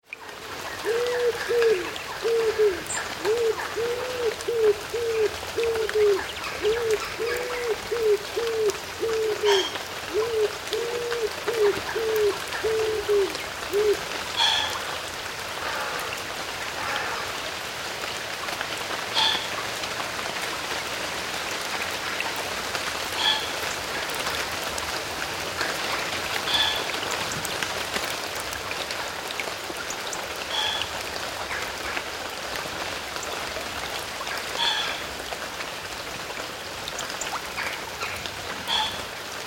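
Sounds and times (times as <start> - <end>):
rain on foliage: 0.0 - 39.4
country woodland birds singing: 0.8 - 14.6.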